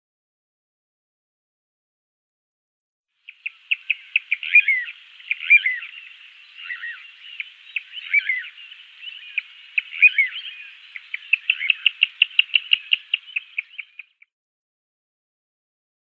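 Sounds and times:
little ringed plover calling: 0:03.3 - 0:14.3.

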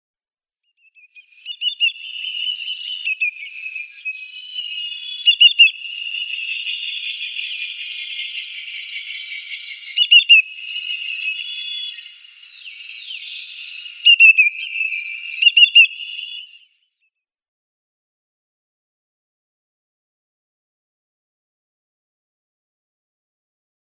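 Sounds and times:
Greater Yellowlegs calls: 0:01.0 - 0:16.9.

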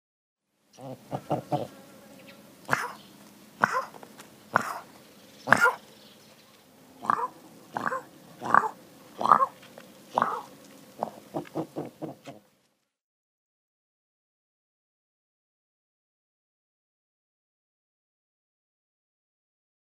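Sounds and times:
male Houbara bustard calling: 0:00.8 - 0:01.8, 0:02.7 - 0:05.9, 0:07.0 - 0:12.4.

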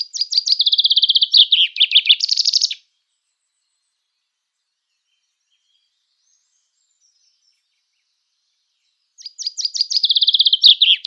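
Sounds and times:
common chaffinch song: 0:00.0 - 0:11.0.

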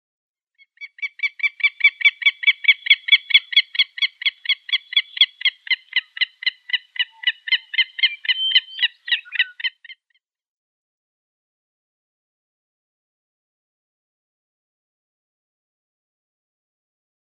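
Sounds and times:
willet calls: 0:00.7 - 0:10.0.

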